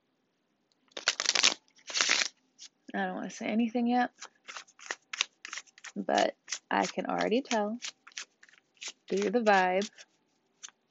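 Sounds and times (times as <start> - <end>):
tarot cards being shuffled: 0.9 - 2.8, 4.2 - 10.8
speech: 2.9 - 4.6, 6.0 - 8.0, 9.1 - 10.1.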